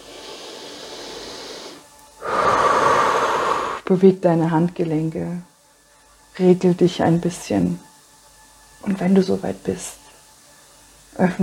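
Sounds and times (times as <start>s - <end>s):
person breathing in and out during a guided relaxation: 0.0s - 3.8s
speech: 3.9s - 5.5s, 6.4s - 7.9s, 8.8s - 10.0s, 11.1s - 11.4s.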